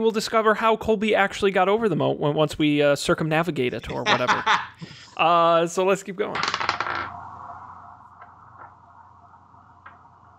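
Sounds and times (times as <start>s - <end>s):
speech: 0.0s - 6.7s
laughter: 3.8s - 4.9s
dice clattering and tumbling on a surface during a tabletop game: 6.3s - 7.1s.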